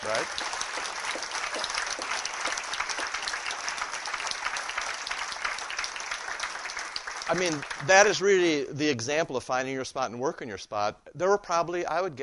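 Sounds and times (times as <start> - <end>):
speech: 0.0 - 1.6, 7.3 - 12.2
audience applause: 0.0 - 8.5.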